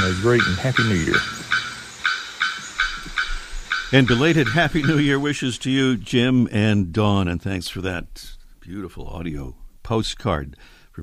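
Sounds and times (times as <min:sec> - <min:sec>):
speech: 0:00.0 - 0:01.5, 0:03.9 - 0:11.0
bearded bellbird calls at the Asa Wright Nature Centre in Trinidad and Tobago: 0:00.0 - 0:05.6.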